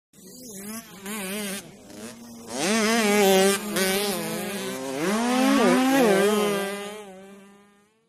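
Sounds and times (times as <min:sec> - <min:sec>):
80 Bys motocross motorcycle engine: 0:00.2 - 0:08.0.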